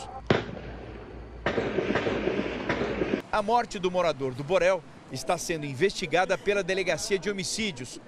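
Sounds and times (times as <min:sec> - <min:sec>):
outdoor noise: 0:00.0 - 0:08.0
gunshots in an exchange of gunfire: 0:00.3 - 0:03.2
speech: 0:03.3 - 0:08.0.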